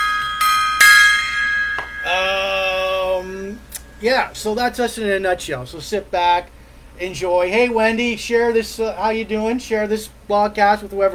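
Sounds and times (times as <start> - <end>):
metal gong being struck: 0.0 - 3.2
speech: 4.0 - 11.1.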